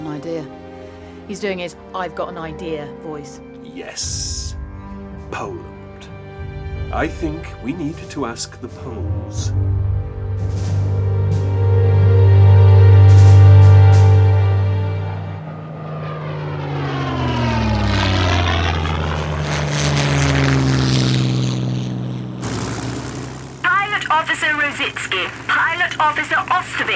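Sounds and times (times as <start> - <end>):
propeller aircraft droning in flight: 0.0 - 26.9
speech: 0.2 - 0.7, 1.3 - 4.6, 5.3 - 6.1, 6.9 - 10.8, 24.8 - 26.9
burst of rushing noise: 22.4 - 23.7.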